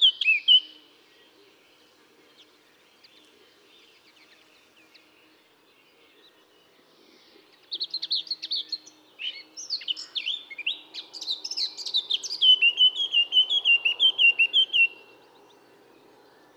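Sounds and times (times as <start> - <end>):
Eurasian blackcap Sylvia atricapilla song with scratchy warbling and fluted whistles: 0.0 - 0.8, 7.9 - 15.1.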